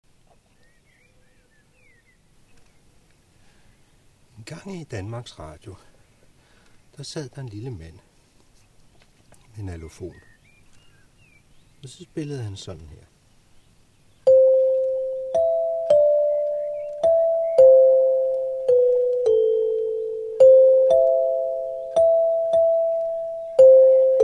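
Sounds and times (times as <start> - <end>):
alufon: 14.2 - 24.2.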